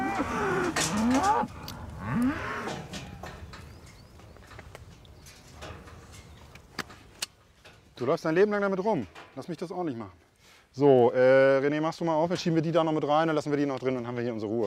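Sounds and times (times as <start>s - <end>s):
calves separated from their mothers mooing on a farm: 0.0s - 5.4s
speech: 1.4s - 3.0s, 8.0s - 14.6s.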